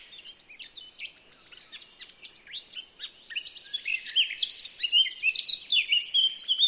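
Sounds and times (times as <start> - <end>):
Eurasian blackcap Sylvia atricapilla singing: 0.0 - 6.6.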